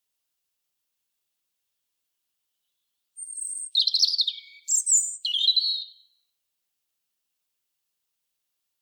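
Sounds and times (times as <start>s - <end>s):
European robin Erithacus rubecula singing: 2.7s - 6.2s.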